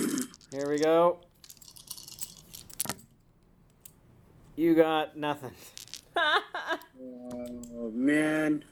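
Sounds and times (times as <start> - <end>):
dice rolling on a hard surface: 0.0 - 3.0, 5.6 - 6.3
speech: 0.6 - 1.3, 4.6 - 8.7.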